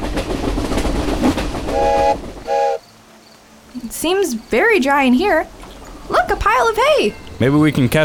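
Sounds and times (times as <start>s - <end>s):
train rumbling past in the distance: 0.0s - 8.0s
long train horn blasts: 1.7s - 2.8s
speech: 4.0s - 5.6s, 6.3s - 8.0s.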